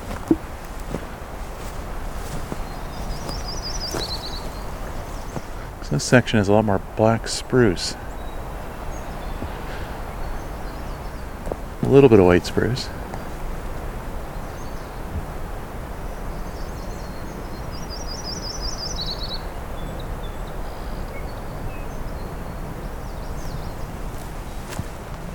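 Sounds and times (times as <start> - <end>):
rustling and crunching footstep noise: 0.0 - 6.1, 8.4 - 10.1, 11.3 - 13.8, 23.4 - 25.3
myrtle warbler singing a short high trill: 1.6 - 15.1, 15.9 - 24.7
speech: 5.9 - 8.0, 11.9 - 13.0.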